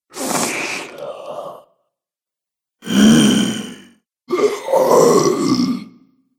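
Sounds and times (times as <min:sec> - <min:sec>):
zombie groans: 0:00.2 - 0:01.7, 0:02.8 - 0:06.0.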